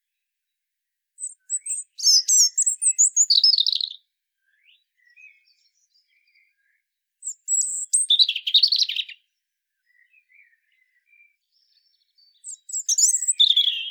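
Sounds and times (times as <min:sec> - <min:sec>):
European robin singing, Erithacus rubecula: 0:01.2 - 0:13.8.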